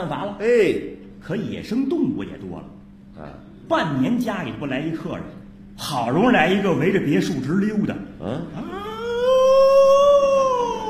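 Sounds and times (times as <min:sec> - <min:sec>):
speech: 0:00.0 - 0:08.8
wolf howling: 0:08.6 - 0:10.8.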